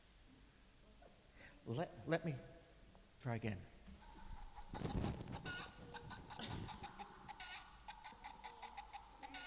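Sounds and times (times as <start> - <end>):
speech: 1.6 - 2.6, 3.2 - 3.8
chicken clucking inside a bag: 4.0 - 9.4
brief rustling thumps: 4.7 - 6.8.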